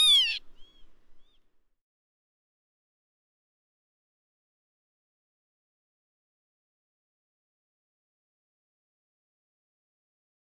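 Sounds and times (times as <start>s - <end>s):
northern lapwing call: 0.0s - 0.8s.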